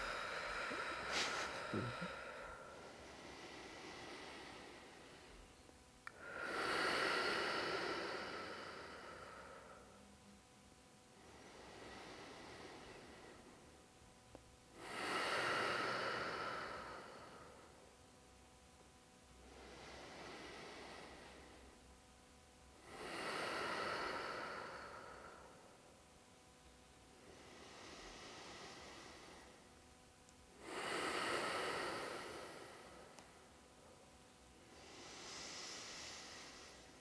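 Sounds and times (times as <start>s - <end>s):
deep breathing in and exhaling out: 0.0s - 10.0s, 11.2s - 13.7s, 14.8s - 17.9s, 19.4s - 21.8s, 22.8s - 25.9s, 27.2s - 29.7s, 30.5s - 34.0s, 34.6s - 36.9s.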